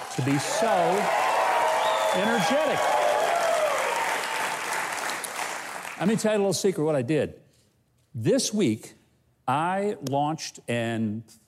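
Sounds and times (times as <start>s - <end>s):
studio audience whooping and cheering: 0.0s - 5.6s
studio audience clapping: 0.0s - 6.3s
speech: 0.2s - 1.3s, 2.1s - 3.0s, 6.0s - 7.4s, 8.2s - 11.4s.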